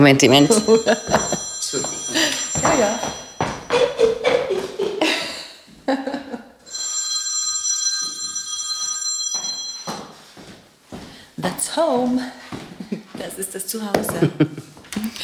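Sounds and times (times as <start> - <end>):
speech: 0.0 - 1.4, 11.8 - 12.4, 13.7 - 14.7
telephone ringing: 0.0 - 4.5, 6.7 - 10.3
laughter: 0.5 - 2.6, 3.6 - 6.6.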